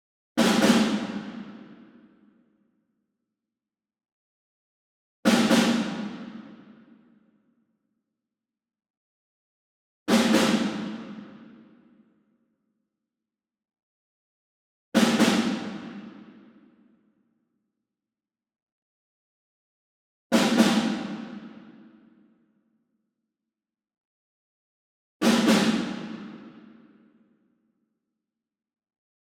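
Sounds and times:
ensemble snare drum group: 0.4s - 1.7s, 5.3s - 6.6s, 10.1s - 11.3s, 15.0s - 16.3s, 20.3s - 21.6s, 25.2s - 26.6s.

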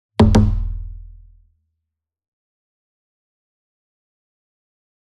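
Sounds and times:
single drum hit with double soft beater near: 0.2s - 0.8s.

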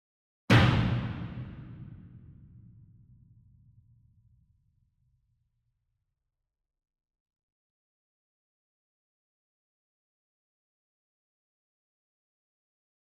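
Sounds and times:
single 66 inch drum hit hard with a beater: 0.5s - 1.8s.

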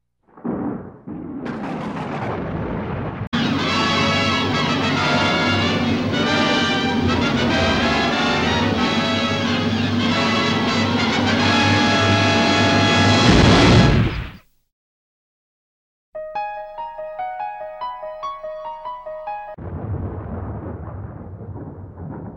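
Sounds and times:
thunderstorm: 0.3s - 14.2s, 19.6s - 22.3s.

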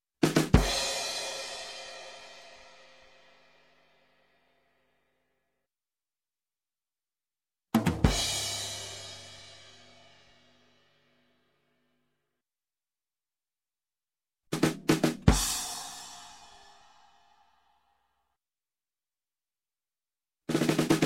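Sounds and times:
music: 0.2s - 5.4s, 7.8s - 12.3s, 14.5s - 18.4s, 20.5s - 21.0s
drum accents: 7.8s - 8.8s, 14.5s - 15.8s, 20.5s - 21.0s.

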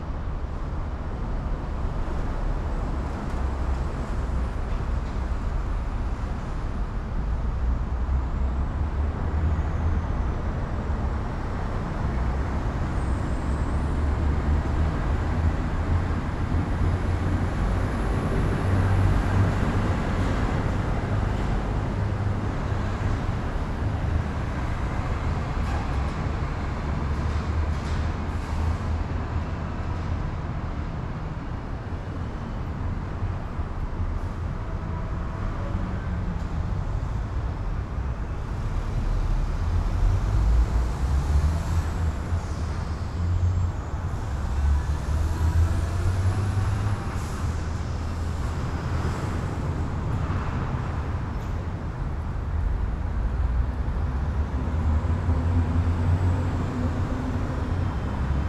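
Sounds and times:
train: 0.0s - 58.4s.

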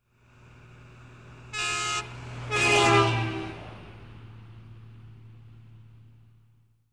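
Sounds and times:
truck passing: 0.1s - 6.7s
truck horn honking: 1.4s - 3.8s.

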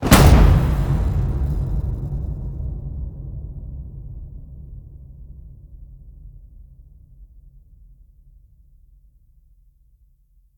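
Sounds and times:
designed cinematic fire hit: 0.0s - 5.7s.

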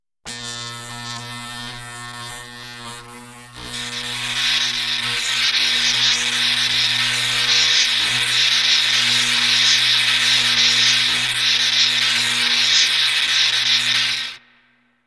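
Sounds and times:
lab machines: 3.8s - 14.4s.

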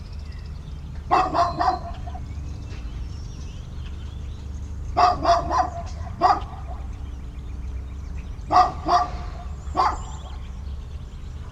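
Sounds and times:
low steady background hum: 0.0s - 11.4s
dog barking in a suburban setting in the morning: 1.1s - 2.4s, 5.0s - 7.0s, 8.4s - 10.4s.

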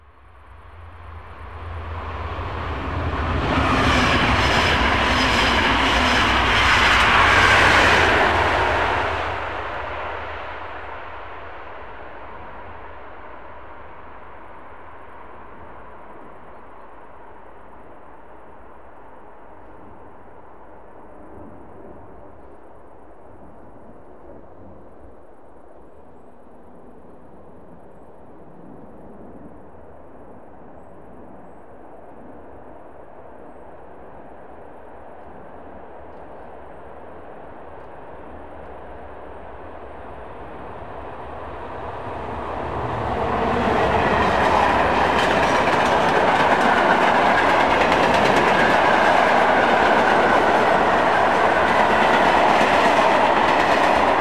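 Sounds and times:
subway train interior: 0.0s - 54.2s.

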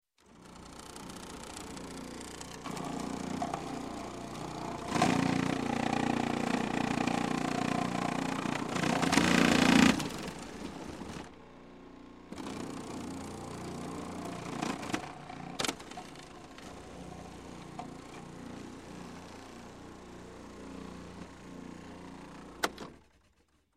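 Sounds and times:
food processor slicing vegetables: 0.2s - 11.4s, 12.3s - 22.9s.

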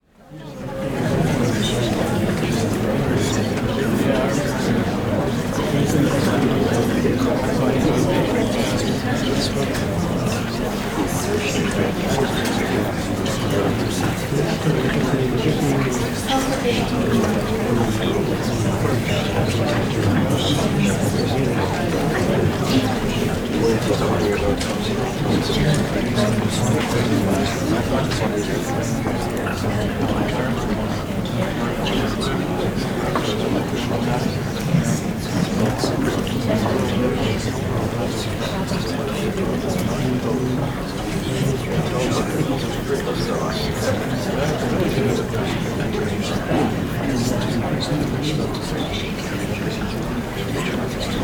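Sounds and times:
indoor crowd walla in courtroom gallery: 0.0s - 51.2s.

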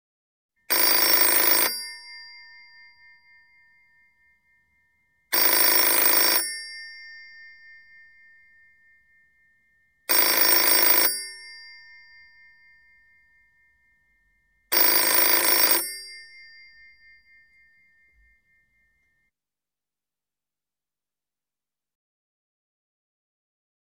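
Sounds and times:
European office telephone ringing: 0.7s - 4.0s, 5.3s - 9.5s, 10.1s - 13.2s, 14.7s - 18.9s.

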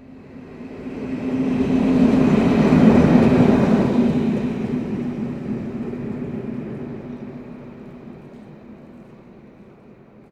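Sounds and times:
train passing fast: 0.0s - 10.2s.

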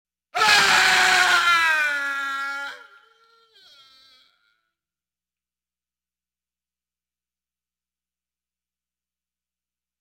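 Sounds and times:
man screaming intensely: 0.4s - 3.0s.

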